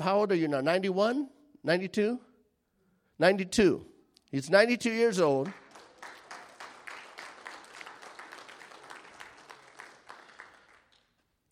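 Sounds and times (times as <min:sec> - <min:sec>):
speech: 0:00.0 - 0:02.3, 0:03.2 - 0:05.6
room full of people applauding: 0:05.4 - 0:11.2.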